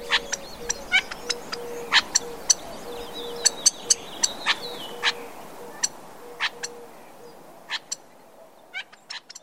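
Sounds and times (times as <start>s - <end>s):
Gambel's quail chirps, burrs, buzzy trills and warning calls: 0.0s - 6.9s, 7.7s - 8.0s.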